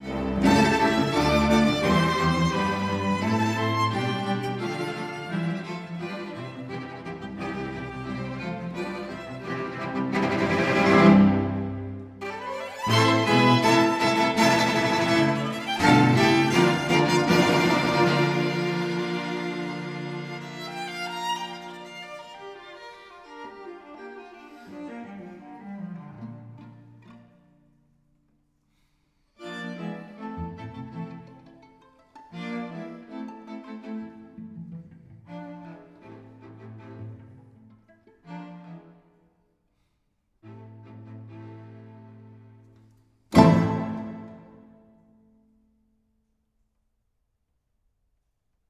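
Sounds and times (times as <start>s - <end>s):
string sextet playing with reverb: 0.0s - 27.4s, 29.4s - 39.2s, 43.3s - 45.0s.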